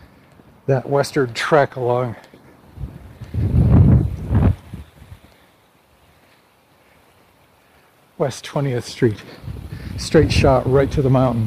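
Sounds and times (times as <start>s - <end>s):
speech: 0.7s - 2.4s, 8.2s - 11.4s
wind gusts along a city street at night buffeting the microphone: 2.6s - 5.4s, 8.8s - 11.4s.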